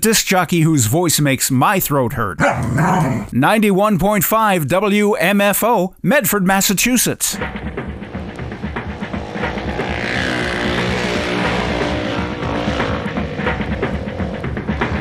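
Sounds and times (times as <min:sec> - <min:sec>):
speech: 0:00.0 - 0:07.8
motorcycle engine revving: 0:07.4 - 0:14.9.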